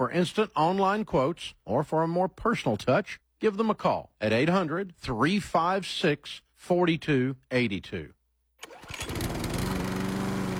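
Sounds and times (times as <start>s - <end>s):
speech: 0.0s - 8.2s
zero-turn riding lawn mower engine starting and running: 8.6s - 10.5s.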